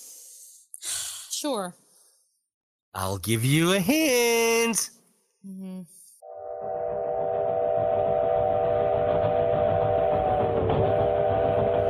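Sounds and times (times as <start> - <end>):
speech: 1.4 - 1.8, 2.9 - 6.0
train whistle blowing: 6.2 - 11.8
rumbling rail noise: 6.3 - 11.8.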